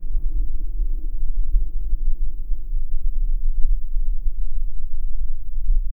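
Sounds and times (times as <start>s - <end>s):
ambience: 0.0s - 5.9s.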